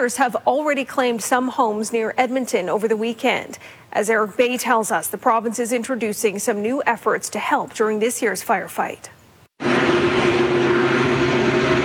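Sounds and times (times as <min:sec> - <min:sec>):
speech: 0:00.0 - 0:09.2
helicopter rotor and engine drone hovering over a wildfire near homes: 0:09.6 - 0:11.8.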